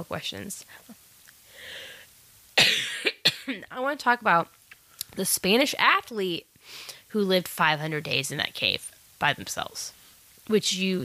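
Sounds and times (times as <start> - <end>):
speech: 0.0 - 1.0, 3.5 - 11.0
person coughing: 2.6 - 3.7.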